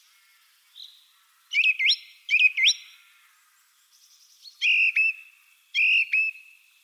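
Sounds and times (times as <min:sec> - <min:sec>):
song thrush Turdus philomelos singing whistled phrases: 0:01.6 - 0:02.8, 0:04.6 - 0:06.6.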